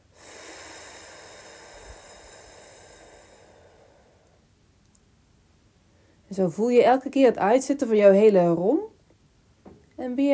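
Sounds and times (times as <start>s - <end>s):
person breathing in and out during a breathing exercise: 0.0s - 4.5s, 5.9s - 6.3s
speech: 6.3s - 8.9s, 10.0s - 10.3s.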